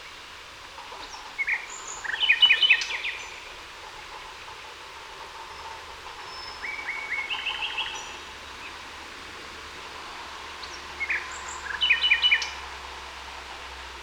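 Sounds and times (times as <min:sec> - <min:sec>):
common nightingale Luscinia megarhynchos singing: 0:00.0 - 0:04.5, 0:05.5 - 0:09.0, 0:10.5 - 0:12.6
steady background hiss: 0:00.0 - 0:14.0.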